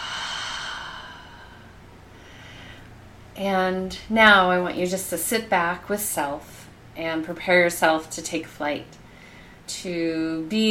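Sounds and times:
deep breath in and out: 0.0 - 3.0, 9.1 - 9.7
speech: 3.4 - 9.0, 9.7 - 10.7.

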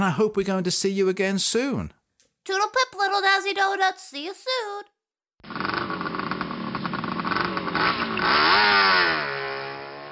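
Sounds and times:
speech: 0.0 - 4.9
motorbike engine revving as rider pulls away: 5.4 - 10.1.

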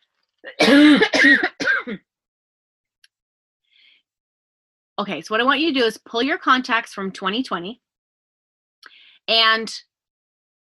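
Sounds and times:
speech: 0.4 - 2.0, 5.0 - 7.8, 9.3 - 9.9
rough raspy throaty cough: 0.5 - 2.0.

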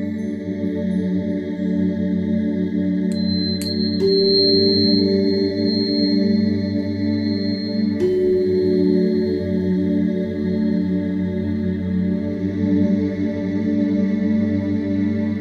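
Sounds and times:
soothing music with low tones: 0.0 - 15.4
struck tuning forks ringing: 3.1 - 11.7.

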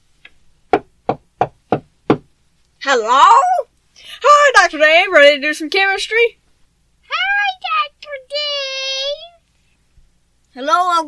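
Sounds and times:
firm knocks on a door: 0.7 - 2.3
speech: 2.9 - 3.6, 4.2 - 6.4, 10.6 - 11.0.

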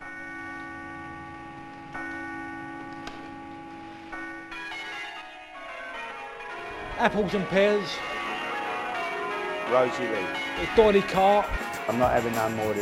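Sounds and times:
great church bell peal: 0.0 - 12.8
speech: 7.0 - 8.2, 9.7 - 12.8.

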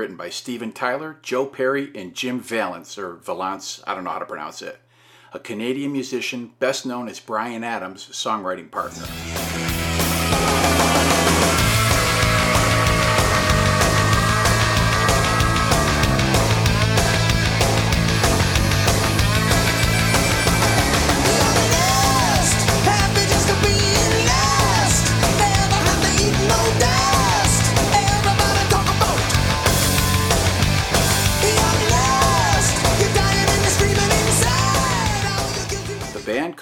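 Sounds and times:
speech: 0.0 - 9.7
distorted guitars in a hard rock song: 8.9 - 36.3
heavy pounding drums in a hard rock song: 9.1 - 36.2
shouted wailing vocal in a hard rock song: 9.9 - 35.7.

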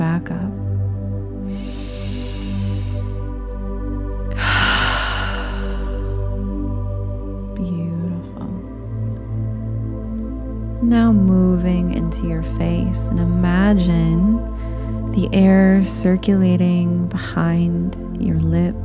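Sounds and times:
low drone: 0.0 - 18.8
speech: 0.2 - 0.6, 10.9 - 14.5, 15.2 - 18.8
slow breaths drawn in through the nose during post-workout breathwork: 1.5 - 3.5, 4.2 - 6.6.

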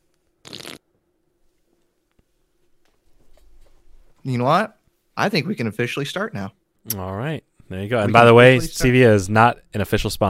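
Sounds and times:
slurping sip of fizzy ginger root beer from a can: 0.4 - 0.8
speech: 4.2 - 10.2.

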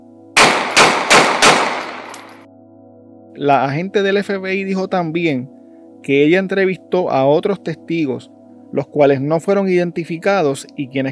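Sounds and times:
loud gunshots with tail: 0.4 - 2.4
speech: 3.4 - 11.0.

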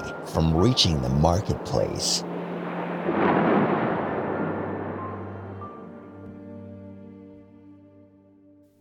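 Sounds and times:
low steady drone: 0.0 - 8.0
deep roll of thunder rumbling: 0.1 - 6.5
speech: 0.3 - 2.3.

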